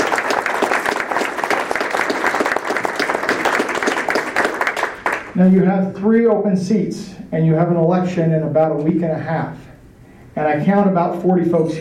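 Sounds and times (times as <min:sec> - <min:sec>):
room full of people applauding for candidates: 0:00.0 - 0:05.4
speech: 0:05.4 - 0:09.7, 0:10.4 - 0:11.7.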